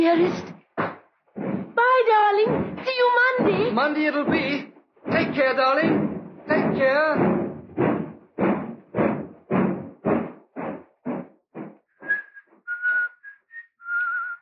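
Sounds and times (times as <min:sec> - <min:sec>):
speech: 0:00.0 - 0:00.9, 0:02.0 - 0:07.4
regular thuds: 0:00.0 - 0:13.2
man on a train platform whistling a merry tune: 0:12.0 - 0:14.4.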